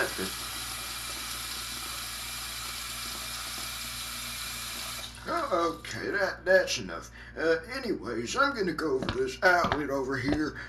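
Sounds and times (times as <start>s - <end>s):
water running from a tap: 0.0s - 5.9s
speech: 5.5s - 10.6s.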